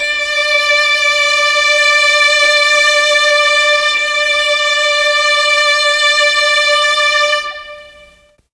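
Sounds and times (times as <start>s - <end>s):
mellotron violins playing D4: 0.0s - 8.5s.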